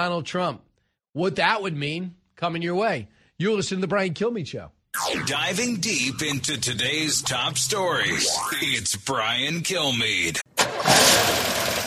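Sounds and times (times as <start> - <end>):
speech: 0.0 - 11.4
car engine turning over: 10.5 - 11.8.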